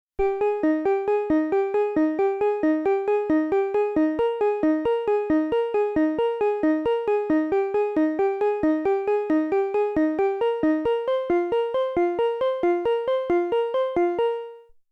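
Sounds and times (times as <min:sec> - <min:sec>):
Moog One synthesizer arpeggio: 0:00.2 - 0:14.6.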